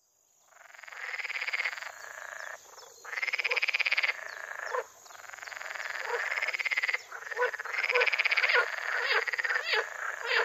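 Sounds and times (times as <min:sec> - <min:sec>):
water frog pulsed rattling croak: 0:00.5 - 0:10.4.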